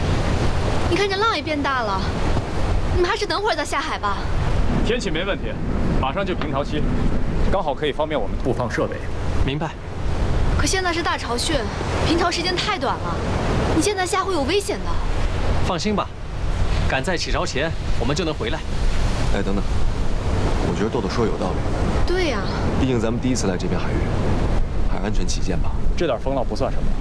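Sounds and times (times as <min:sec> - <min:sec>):
continuous rush of wind: 0:00.0 - 0:27.0
ocean waves surging and washing at sea among islands: 0:00.0 - 0:27.0
voices talking: 0:00.8 - 0:02.3, 0:02.9 - 0:09.9, 0:10.5 - 0:16.2, 0:20.6 - 0:26.8.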